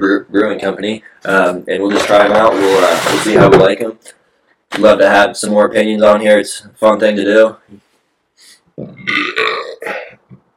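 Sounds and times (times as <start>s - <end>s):
speech: 0.0s - 7.8s, 8.8s - 9.6s
loud drawn-out burp: 8.8s - 10.3s.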